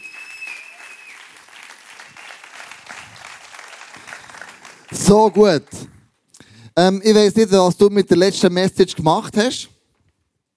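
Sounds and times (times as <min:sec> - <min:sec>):
large audience applauding in an indoor hall: 0:00.0 - 0:05.7
speech: 0:04.9 - 0:05.8, 0:06.8 - 0:09.7.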